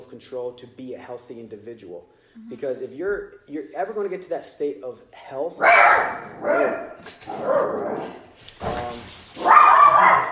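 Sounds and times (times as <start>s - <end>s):
speech: 0.1s - 9.1s
dogs barking harshly: 5.6s - 8.3s, 9.4s - 10.3s.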